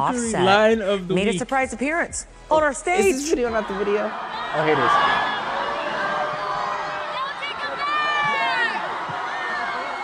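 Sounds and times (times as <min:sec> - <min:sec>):
speech: 0:00.0 - 0:05.4
large festival crowd in Los Angeles cheering and screaming: 0:03.2 - 0:10.0.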